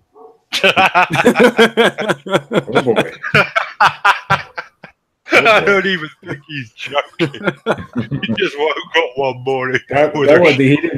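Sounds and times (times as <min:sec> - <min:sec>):
dog barking: 0:00.1 - 0:00.4
speech: 0:00.6 - 0:04.2, 0:05.4 - 0:10.9
laughter: 0:00.6 - 0:10.9.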